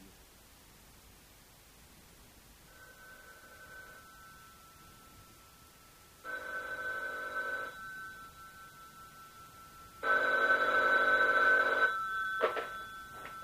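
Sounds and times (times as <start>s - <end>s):
telephone ringing on an international call: 2.7s - 5.5s, 6.2s - 13.4s.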